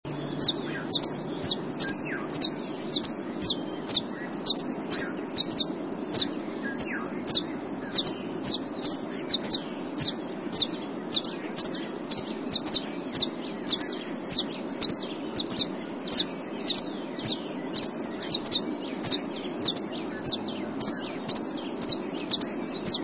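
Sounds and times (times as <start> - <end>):
Saffron Finch Sicalis flaveola singing: 0.1 - 23.0.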